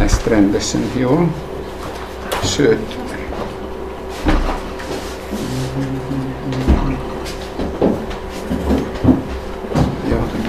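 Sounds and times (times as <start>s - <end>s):
low steady hum: 0.0s - 10.4s
speech: 0.2s - 1.5s, 2.4s - 3.0s
wooden chair dragged and shifted across the floor: 4.1s - 10.0s.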